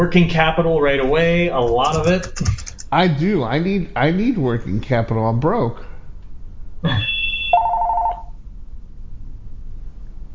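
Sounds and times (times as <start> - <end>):
speech: 0.0 - 5.9, 6.8 - 7.2
telephone ringing with electronic chime: 7.0 - 8.3.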